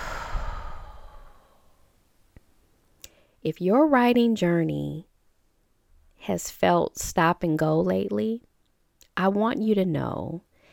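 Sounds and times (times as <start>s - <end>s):
deep breath let out as a long breathy sigh: 0.0s - 1.9s
speech: 3.4s - 5.1s, 6.2s - 8.5s, 9.2s - 10.5s.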